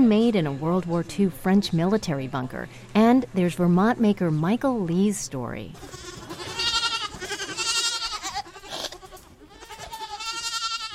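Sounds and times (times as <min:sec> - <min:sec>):
speech: 0:00.1 - 0:06.1
goats bleating on a farm: 0:05.8 - 0:10.9.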